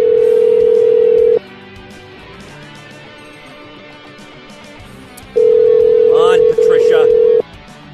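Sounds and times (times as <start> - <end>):
telephone ringback tone on an outgoing call to a home phone: 0.0 - 1.4, 5.4 - 7.4.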